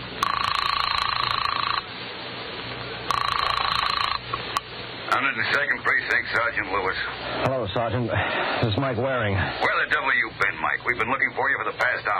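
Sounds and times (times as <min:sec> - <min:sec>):
buzzing telephone ring tones on the line: 0:00.2 - 0:01.9, 0:03.1 - 0:04.6
rotary telephone dial whirring and clicking: 0:00.2 - 0:01.9, 0:03.1 - 0:04.6
speech: 0:05.4 - 0:12.1.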